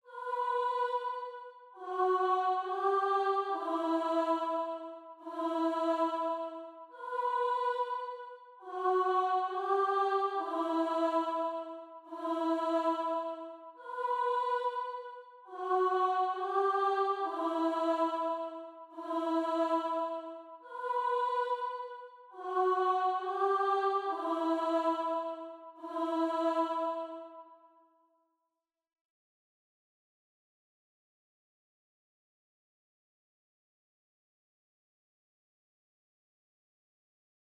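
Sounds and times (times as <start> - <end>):
choir singing in E minor: 0.0 - 27.7.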